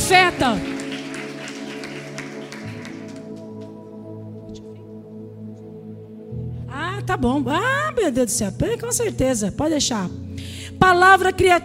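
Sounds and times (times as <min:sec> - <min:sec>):
crowd clapping to applaud a woman: 0:00.0 - 0:04.7
sustained keyboard chords: 0:00.0 - 0:11.6
speech: 0:00.1 - 0:00.8, 0:07.1 - 0:11.6.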